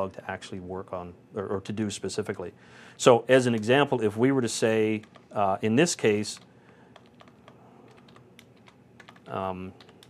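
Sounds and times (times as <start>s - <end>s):
speech: 0.0s - 6.5s, 9.3s - 9.9s
faint typing on a computer keyboard: 5.0s - 5.4s, 6.0s - 10.0s.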